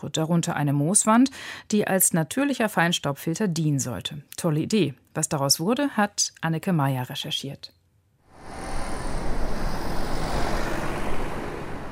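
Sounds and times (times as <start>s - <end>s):
speech: 0.0s - 7.8s
cars rumbling past on the B14 at the Neckartor in Stuttgart: 8.3s - 11.9s.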